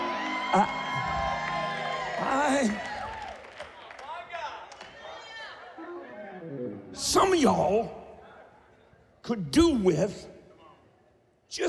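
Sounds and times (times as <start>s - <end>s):
audience shouting and whooping: 0.0s - 3.6s
speech: 0.5s - 0.8s, 7.2s - 8.0s, 9.3s - 10.3s.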